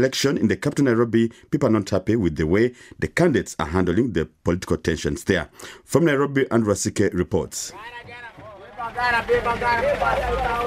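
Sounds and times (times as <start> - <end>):
speech: 0.0 - 10.6
overlapping voices chattering at a busy bus station: 7.7 - 10.6
bus engine rumble at a busy bus station: 7.8 - 10.6.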